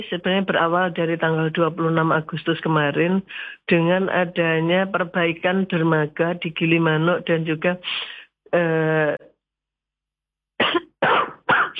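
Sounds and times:
speech: 0.0s - 9.3s
person coughing: 10.6s - 11.7s.

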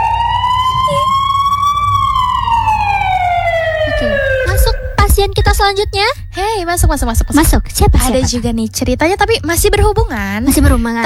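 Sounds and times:
ambulance siren wailing: 0.0s - 7.8s
low engine rumble: 0.4s - 10.9s
speech: 5.2s - 11.0s.

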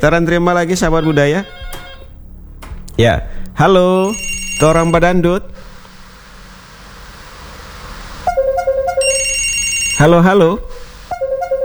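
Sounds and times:
speech: 0.0s - 1.6s, 3.0s - 5.6s, 10.0s - 10.8s
low noise: 0.0s - 11.6s
melodic electronic phone ringtone on an incoming call: 4.0s - 5.7s, 8.3s - 11.6s.

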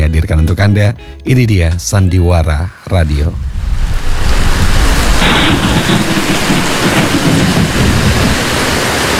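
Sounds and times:
speech: 0.2s - 4.1s, 5.5s - 6.4s
deep thunder rumbling: 3.3s - 9.1s
heavy rain: 3.3s - 9.1s.

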